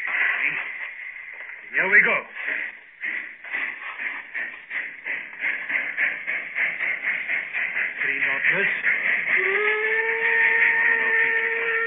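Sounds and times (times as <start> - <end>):
steam hissing: 0.0 - 11.8
speech: 1.7 - 2.8
steam locomotive whistle: 9.3 - 11.8.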